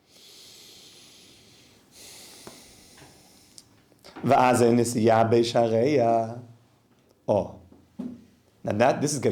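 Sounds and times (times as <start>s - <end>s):
faint quiet breath noise: 0.0s - 3.9s
speech: 4.2s - 6.5s, 7.3s - 7.6s, 8.7s - 9.3s.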